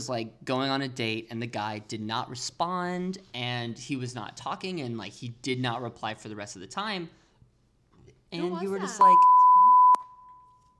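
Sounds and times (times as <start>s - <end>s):
speech: 0.0s - 7.2s, 8.3s - 9.4s
loud steady censor bleep tone: 9.0s - 10.7s.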